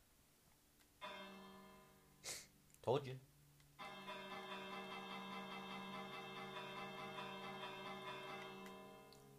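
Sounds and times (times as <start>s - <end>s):
bell ringing: 1.0s - 2.1s, 3.8s - 9.3s
speech: 2.8s - 3.3s.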